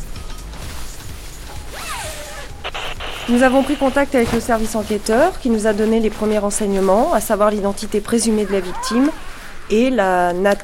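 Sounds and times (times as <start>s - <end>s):
stiff protective forensic clothing rustling as an officer suits up: 0.0s - 10.6s
zipper pulled on protective forensic gear: 1.6s - 2.6s
speech: 3.3s - 10.6s.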